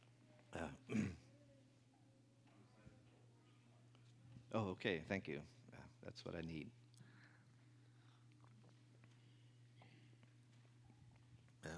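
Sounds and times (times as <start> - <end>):
low steady hum: 0.0 - 11.7
speech: 0.5 - 1.2, 4.5 - 6.8
throat-clearing coughs: 0.6 - 1.3.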